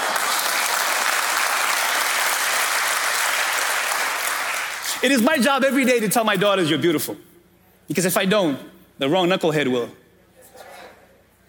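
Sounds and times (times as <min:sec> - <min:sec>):
crowd clapping steadily and loudly: 0:00.0 - 0:05.1
speech: 0:05.0 - 0:07.3, 0:07.9 - 0:10.0.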